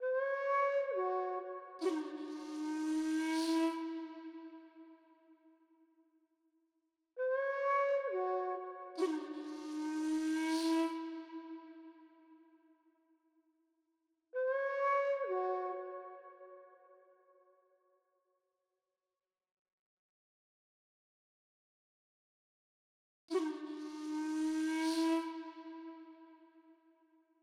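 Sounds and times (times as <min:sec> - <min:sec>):
world music flute melody in C sharp minor: 0:00.0 - 0:04.7, 0:07.3 - 0:11.7, 0:14.4 - 0:16.4, 0:23.3 - 0:26.3.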